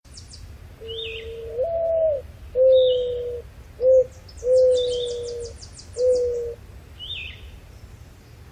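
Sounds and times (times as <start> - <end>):
mourning dove: 0.8 - 7.4.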